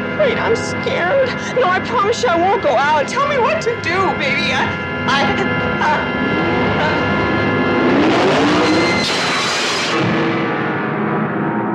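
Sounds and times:
speech: 0.2s - 6.4s
car engine revving: 3.1s - 11.7s
busy, layered soundtrack: 4.8s - 11.6s.

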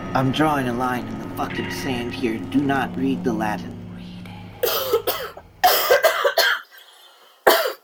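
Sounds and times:
speech: 0.1s - 3.7s
person coughing in harsh hacking bursts: 4.6s - 6.8s, 7.5s - 7.8s.

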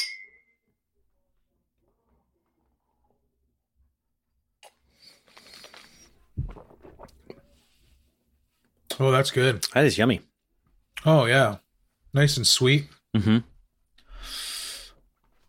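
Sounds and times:
glasses clinking in a toast at a rye whiskey tasting: 0.0s - 0.6s
speech: 9.0s - 10.3s, 11.0s - 13.5s.

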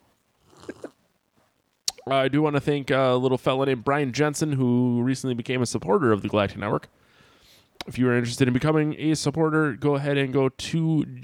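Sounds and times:
person taking a sip of beer: 0.4s - 1.0s
soft wet gulping of beer: 0.4s - 1.0s, 1.9s - 2.1s
speech: 2.1s - 7.0s, 7.9s - 11.2s.

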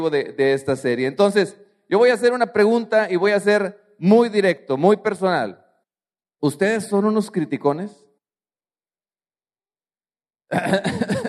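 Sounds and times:
speech: 0.0s - 5.6s, 6.4s - 8.0s, 10.5s - 11.2s
person clearing throat: 10.5s - 11.2s.

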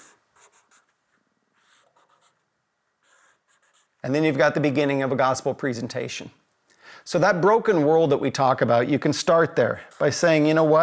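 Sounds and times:
pen scratching across paper in looping strokes: 0.0s - 1.0s, 1.6s - 2.4s, 3.0s - 4.0s
speech: 4.0s - 6.4s, 7.0s - 10.8s.

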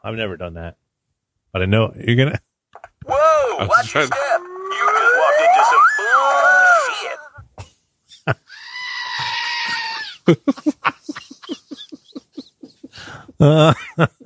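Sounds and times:
speech: 0.0s - 0.8s, 1.5s - 4.8s, 10.3s - 10.8s, 13.4s - 14.2s
laughter: 3.1s - 7.3s, 9.2s - 14.2s
person chattering rapidly: 3.1s - 7.3s
goat screaming: 3.1s - 7.4s, 8.5s - 10.2s.

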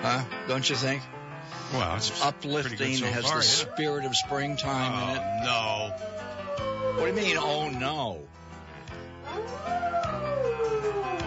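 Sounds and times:
speech: 0.0s - 6.2s, 7.0s - 8.4s
steady music: 0.0s - 11.2s
dog howling along to music: 3.0s - 7.8s, 9.2s - 11.2s.

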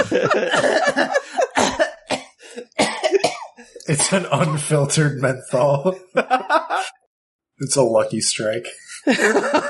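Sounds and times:
speech: 0.0s - 1.3s, 3.9s - 7.0s, 7.6s - 9.6s
laughter: 0.0s - 2.1s, 5.6s - 7.1s, 8.9s - 9.6s
person faking a harsh coughing fit: 0.5s - 4.9s.

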